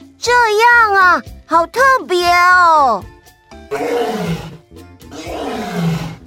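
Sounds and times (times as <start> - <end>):
speech: 0.2 - 4.5
lion roaring: 3.7 - 6.2.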